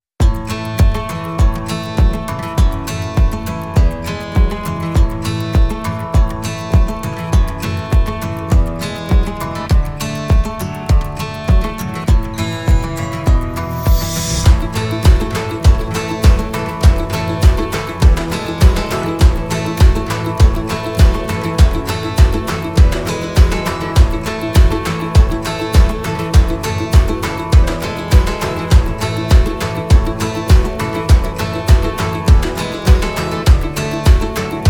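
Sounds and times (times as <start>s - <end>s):
summer countryside acoustic stomp music: 0.2s - 34.6s.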